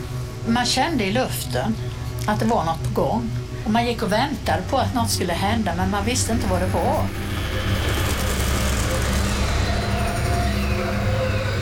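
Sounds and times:
speech: 0.5 - 7.8
truck driving through narrow streets: 5.8 - 11.5.

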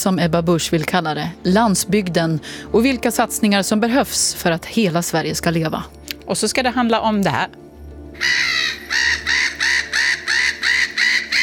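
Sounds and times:
speech: 0.0 - 7.6, 8.2 - 9.0
gull calling with harsh squawking cries: 8.2 - 11.4.

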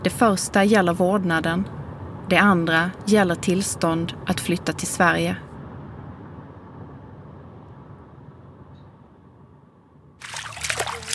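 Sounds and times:
speech: 0.0 - 5.5
steady low rumble of moving water: 10.2 - 11.1.

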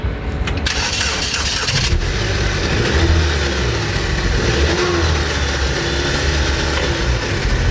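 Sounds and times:
older silver Saab car starter cranking: 0.6 - 2.1
older silver Saab car engine running: 0.6 - 7.6.

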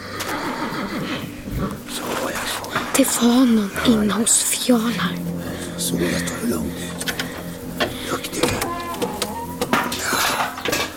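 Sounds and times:
horse neighing uneasily in a stable: 0.0 - 1.3, 6.5 - 10.9
steady rumble: 0.0 - 10.9
speech: 3.0 - 7.2.

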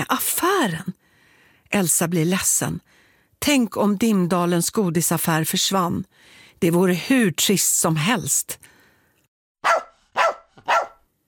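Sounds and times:
speech: 0.0 - 1.0, 1.7 - 8.8
dog barking shrilly: 9.6 - 11.1.

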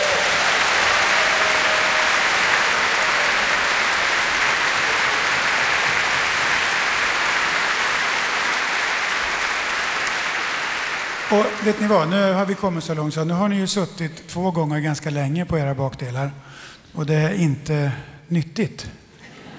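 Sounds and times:
large audience applauding for backstage crew: 0.0 - 12.6
speech: 11.3 - 19.0.

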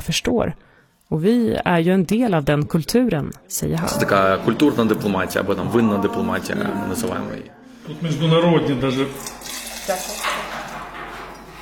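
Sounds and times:
speech: 0.1 - 10.5
Pinot Noir wine pouring from a steel tank tap into a glass: 9.1 - 10.2.

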